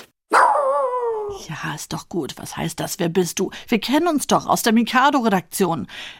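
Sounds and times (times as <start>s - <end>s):
dog barking: 0.3s - 1.4s
speech: 1.6s - 6.1s.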